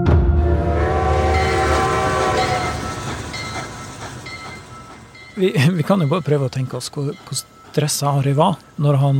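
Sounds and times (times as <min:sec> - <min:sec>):
sustained horn-like tones: 0:00.2 - 0:05.0
train running on rails: 0:00.7 - 0:09.1
speech: 0:05.4 - 0:09.1.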